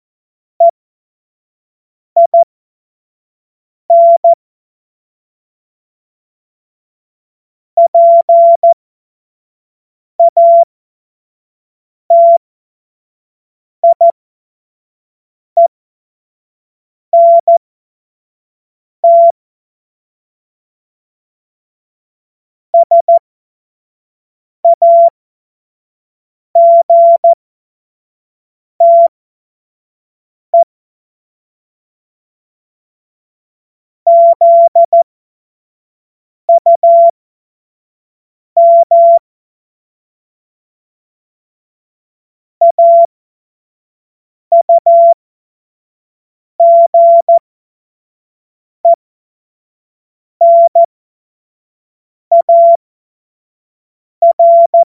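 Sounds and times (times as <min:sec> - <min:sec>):
CW Morse code beeps: 0:02.2 - 0:02.5, 0:03.9 - 0:04.4, 0:07.8 - 0:08.8, 0:10.2 - 0:10.7, 0:12.1 - 0:12.4, 0:13.8 - 0:14.1, 0:17.2 - 0:17.6, 0:19.0 - 0:19.3, 0:22.8 - 0:23.2, 0:24.6 - 0:25.1, 0:26.6 - 0:27.4, 0:28.8 - 0:29.1, 0:34.1 - 0:35.0, 0:36.5 - 0:37.2, 0:38.6 - 0:39.2, 0:42.6 - 0:43.1, 0:44.5 - 0:45.2, 0:46.6 - 0:47.4, 0:50.4 - 0:50.9, 0:52.3 - 0:52.8, 0:54.2 - 0:54.8.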